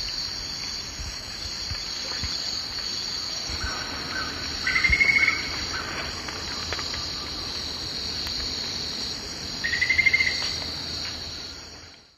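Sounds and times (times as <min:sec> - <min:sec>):
Hemitriccus zosterops call or song: 0:03.5 - 0:07.7, 0:09.6 - 0:10.6.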